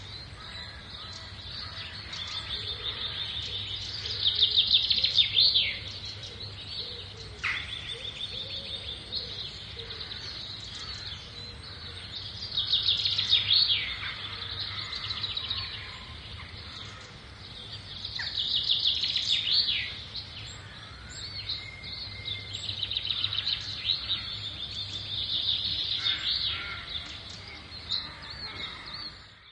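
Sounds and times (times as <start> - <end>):
birds twittering in a busy chorus of high chirps and trills: 0.0 - 29.5.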